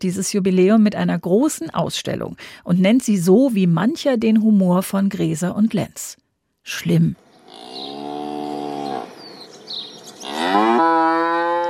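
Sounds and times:
speech: 0.0s - 8.0s
cow mooing: 7.4s - 11.6s.

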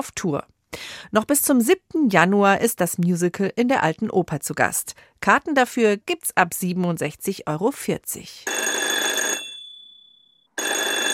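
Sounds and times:
speech: 0.0s - 8.6s
buzzing telephone bell ringing: 8.5s - 11.1s.

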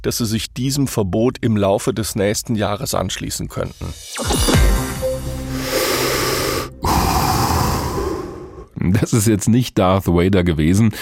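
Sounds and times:
speech: 0.0s - 4.8s, 8.8s - 11.0s
person exhaling a long hissing breath from an e-cigarette: 5.5s - 8.8s
person inhaling from an e-cigarette: 5.5s - 8.8s.

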